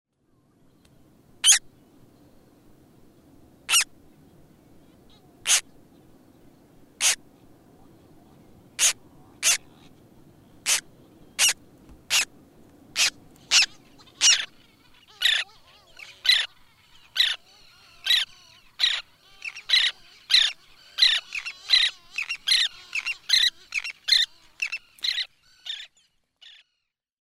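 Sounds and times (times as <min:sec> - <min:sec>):
roseate tern chicks calling: 0:03.7 - 0:03.9, 0:07.0 - 0:07.2, 0:08.8 - 0:10.0, 0:10.6 - 0:12.3, 0:13.0 - 0:26.6.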